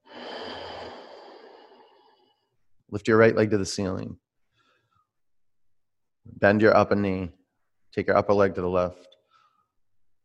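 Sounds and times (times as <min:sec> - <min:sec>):
long breathy exhale through the throat during a breathing practice: 0:00.0 - 0:02.5
speech: 0:02.9 - 0:04.2, 0:06.4 - 0:09.2.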